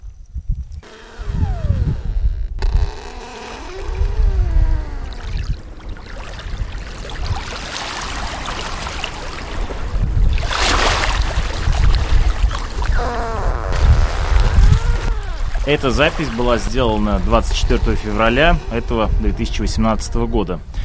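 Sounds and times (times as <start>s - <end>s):
Arctic ice floes creaking and groaning on a fjord shore: 0.8s - 9.6s, 10.5s - 20.2s
steady wash of water on a fjord shore: 3.4s - 19.2s
speech: 15.7s - 20.8s.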